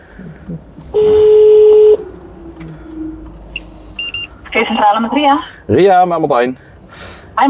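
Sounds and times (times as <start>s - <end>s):
low rumble: 0.0s - 7.4s
speech: 0.2s - 1.3s, 4.6s - 6.7s
phone line ringing tone: 1.0s - 2.0s, 3.6s - 4.4s
short electronic telephone dialing beeps: 1.0s - 2.0s, 3.6s - 4.3s.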